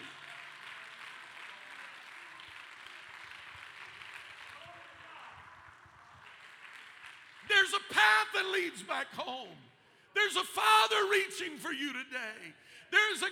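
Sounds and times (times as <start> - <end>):
large crowd applauding: 0.0 - 7.9
speech: 7.6 - 13.3.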